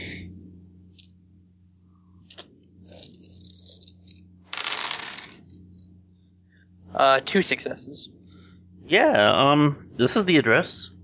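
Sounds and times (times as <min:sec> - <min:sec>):
low steady hum: 0:00.0 - 0:11.0
seven dice rolled during a tabletop role-playing game: 0:02.3 - 0:05.6
speech: 0:07.0 - 0:08.2, 0:08.9 - 0:11.0.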